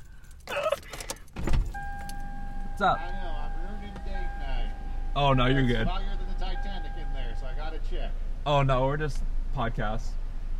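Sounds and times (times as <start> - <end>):
keys jingling and rattling: 0.0 - 2.3
faint car interior rumble: 0.0 - 10.5
speech: 2.8 - 3.2, 5.2 - 6.1, 8.4 - 10.2.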